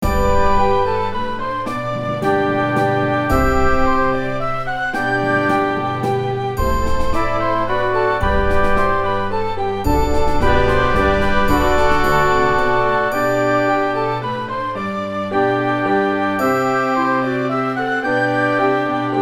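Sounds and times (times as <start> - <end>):
minuet: 0.0 - 19.2.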